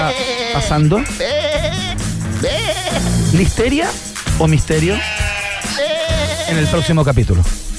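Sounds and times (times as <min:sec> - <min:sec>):
sheep bleating: 0:00.0 - 0:03.6, 0:04.7 - 0:06.9
speech: 0:00.1 - 0:01.3, 0:02.4 - 0:05.8, 0:06.5 - 0:07.6.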